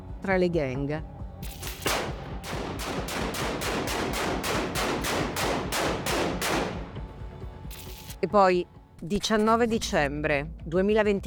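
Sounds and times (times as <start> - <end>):
speech: 0.2 - 1.6, 8.2 - 11.2
rapid gunshots fired at a door in a gang-related shooting: 1.4 - 7.0.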